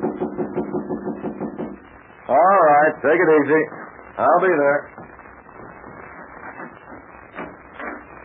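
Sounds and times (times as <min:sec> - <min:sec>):
hard knocks on a door: 0:00.0 - 0:01.9
speech: 0:02.4 - 0:04.9.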